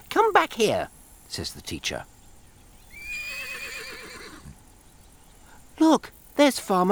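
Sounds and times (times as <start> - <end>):
speech: 0.4 - 2.1, 5.8 - 6.9
horse giving a quavering whinny: 2.8 - 4.6.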